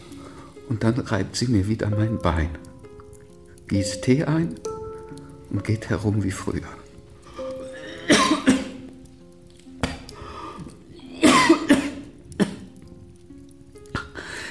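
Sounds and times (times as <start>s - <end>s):
speech: 0.7s - 2.7s, 3.7s - 4.7s, 5.5s - 6.8s
persistent harsh chesty cough: 7.8s - 8.8s, 11.2s - 12.7s.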